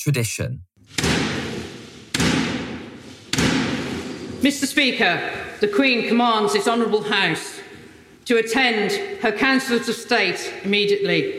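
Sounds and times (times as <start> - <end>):
speech: 0.0 - 1.2, 4.4 - 7.6, 8.2 - 11.3
stick knocking on a big wooden door in a large hall: 0.9 - 4.4.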